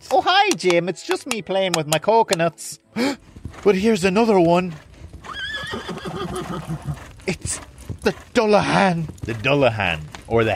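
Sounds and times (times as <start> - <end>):
speech: 0.5 - 4.9, 6.5 - 10.5
soft thudding galloping hoofbeats: 3.0 - 10.5
black horse whinnying: 5.1 - 9.3.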